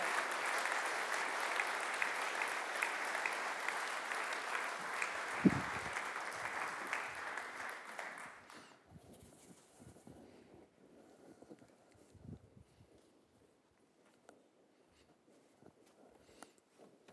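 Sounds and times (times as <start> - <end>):
audience applause: 0.0 - 8.5.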